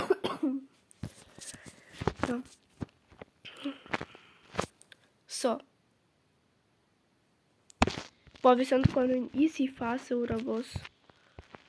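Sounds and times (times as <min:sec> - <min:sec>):
person coughing in hoarse, throaty bursts: 0:00.0 - 0:00.7
speech: 0:02.3 - 0:02.6, 0:05.4 - 0:05.7, 0:08.4 - 0:10.9.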